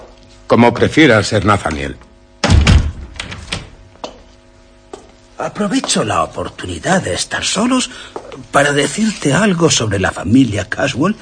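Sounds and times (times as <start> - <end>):
speech: 0.5 - 2.1, 5.4 - 11.2
door pushed shut with heavy thud and rattle: 2.4 - 3.8.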